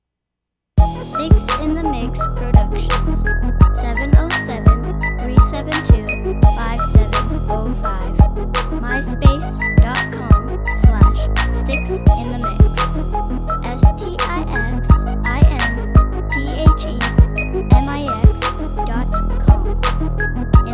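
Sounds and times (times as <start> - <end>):
space bass synth: 0.8 - 20.7.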